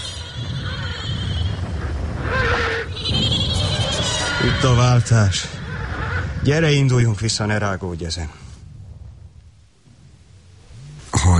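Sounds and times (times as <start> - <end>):
horses screaming and neighing: 0.0 - 7.2
rough windy background: 0.0 - 11.3
speech: 4.5 - 5.6, 6.4 - 8.4.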